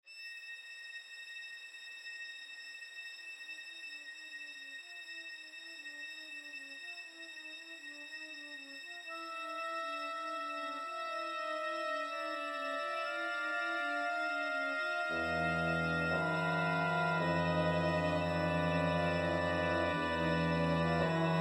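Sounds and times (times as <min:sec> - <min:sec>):
horror scene soundtrack without dialogue: 0:09.1 - 0:21.3.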